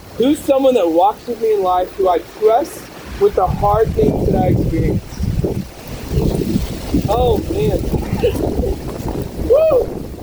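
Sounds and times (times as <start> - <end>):
strong wind gusts buffeting the microphone: 0.0 - 10.2
speech: 0.2 - 5.7, 7.0 - 10.0
person whooping: 9.4 - 10.0.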